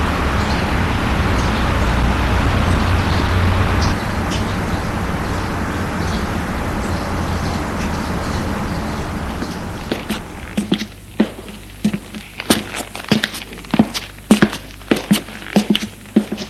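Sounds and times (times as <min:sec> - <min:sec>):
low traffic rumble: 0:00.0 - 0:16.4
footsteps of a man walking outdoors: 0:03.9 - 0:16.4.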